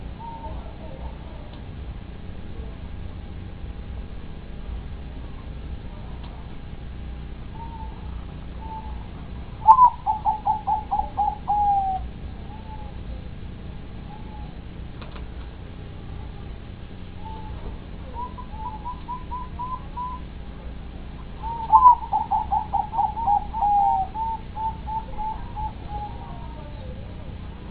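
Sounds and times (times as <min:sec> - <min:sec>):
low background rumble: 0:00.0 - 0:27.6
dove cooing: 0:00.1 - 0:01.2, 0:07.6 - 0:13.2, 0:17.2 - 0:20.3, 0:21.4 - 0:27.1.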